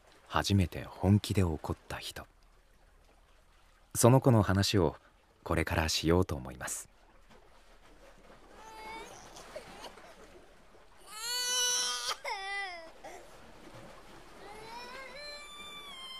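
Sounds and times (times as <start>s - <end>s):
speech: 0.3s - 2.3s, 3.9s - 6.9s
young child crying: 8.5s - 10.2s, 11.0s - 13.4s, 14.4s - 16.1s.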